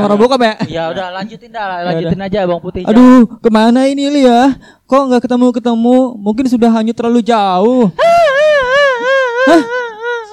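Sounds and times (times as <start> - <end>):
speech: 0.0 - 8.3, 9.5 - 9.8
voice imitating wailing and crying: 7.9 - 10.3
laughter: 8.0 - 10.3.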